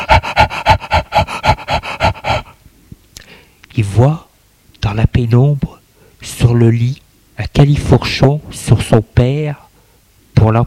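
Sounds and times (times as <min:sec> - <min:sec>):
person laboured breathing with fast panting gasps: 0:00.0 - 0:02.6
speech: 0:03.8 - 0:04.2, 0:04.9 - 0:09.6, 0:10.4 - 0:10.6.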